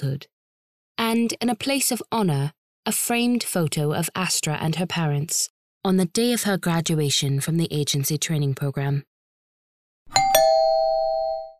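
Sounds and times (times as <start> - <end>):
speech: 0.0 - 0.3, 1.0 - 9.1
home doorbell two-tone chimes: 10.1 - 11.5.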